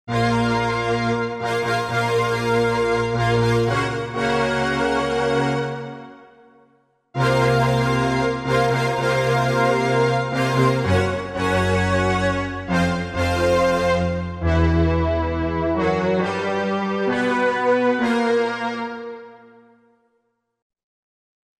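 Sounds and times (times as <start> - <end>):
symphonic synthesizer sound module: 0.1 - 6.2, 7.2 - 19.6.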